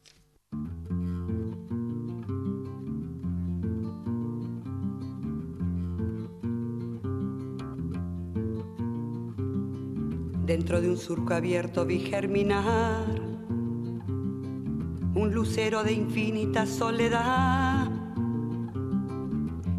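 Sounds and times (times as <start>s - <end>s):
recorded song with harmonic instrumental accompaniment: 0.0s - 19.7s
speech: 10.5s - 13.2s, 15.3s - 17.8s.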